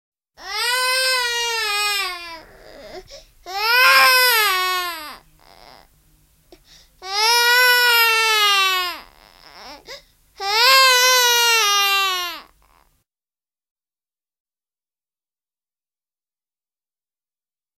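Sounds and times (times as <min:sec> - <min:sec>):
baby crying: 0:00.4 - 0:05.9, 0:07.0 - 0:12.9.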